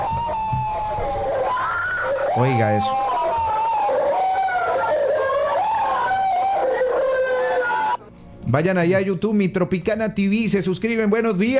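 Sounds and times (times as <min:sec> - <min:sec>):
people screaming with sustained high-pitched screams: 0:00.0 - 0:08.0
speech: 0:02.4 - 0:03.1, 0:08.5 - 0:11.5.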